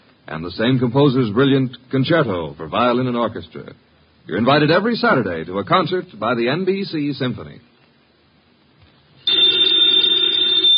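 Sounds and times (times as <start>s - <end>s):
speech: 0.3s - 7.7s
telephone bell ringing: 9.2s - 10.7s.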